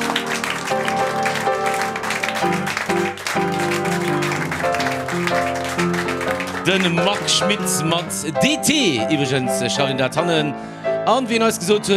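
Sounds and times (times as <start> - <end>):
applause for a performer after a piano-accompanied act: 0.0 - 8.2
speech: 6.7 - 11.9.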